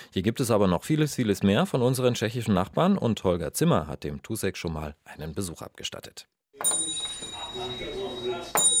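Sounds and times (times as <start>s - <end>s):
speech: 0.1s - 8.6s
shop door bell ringing: 6.6s - 8.7s.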